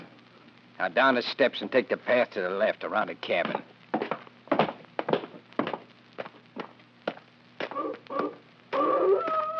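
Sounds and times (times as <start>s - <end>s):
speech: 0.8s - 3.7s
heavy footsteps thudding: 3.5s - 9.5s
drawn-out wavering wolf howl: 7.8s - 9.5s.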